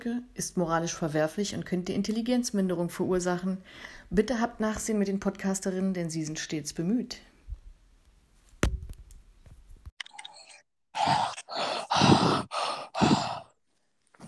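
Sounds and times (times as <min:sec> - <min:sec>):
speech: 0:00.0 - 0:07.3
person deliberately breathing very loudly: 0:11.0 - 0:13.6.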